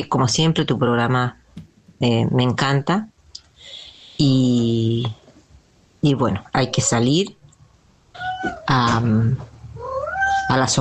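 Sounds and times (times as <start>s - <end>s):
speech: 0.0s - 1.4s, 2.0s - 5.2s, 6.0s - 7.4s, 8.4s - 9.5s, 10.5s - 10.7s
cat meowing for attention: 8.1s - 8.8s, 9.7s - 10.7s.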